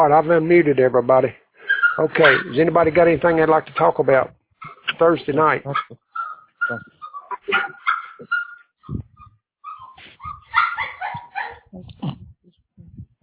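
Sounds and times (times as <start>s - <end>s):
speech: 0.0s - 1.4s, 2.0s - 6.0s, 6.7s - 9.1s
dog whimpering and yipping: 1.7s - 2.5s, 5.7s - 12.4s
dog barking: 5.7s - 8.6s, 9.7s - 11.7s.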